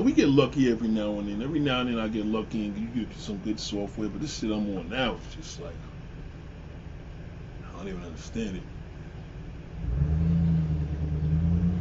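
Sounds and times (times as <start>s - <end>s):
speech: 0.1s - 5.9s, 7.8s - 8.8s
truck passing by with engine rumble and road noise: 9.8s - 11.8s.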